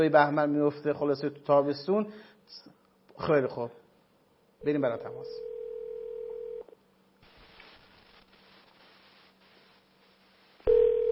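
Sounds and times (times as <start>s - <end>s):
speech: 0.0s - 3.8s, 4.6s - 5.5s
telephone dial tone: 5.4s - 6.7s, 10.7s - 11.0s
soft crackling telephone line hiss: 7.1s - 10.7s.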